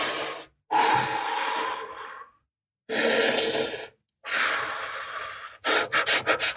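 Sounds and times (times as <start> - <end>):
slow deep breaths: 0.0 - 6.5.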